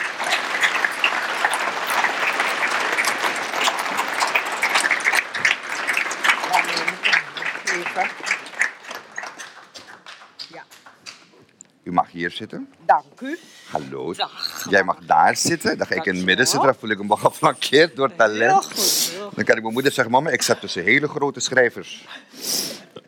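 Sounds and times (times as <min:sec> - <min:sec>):
audience applauding warmly welcoming guests on stage: 0:00.0 - 0:11.3
speech: 0:12.2 - 0:22.4.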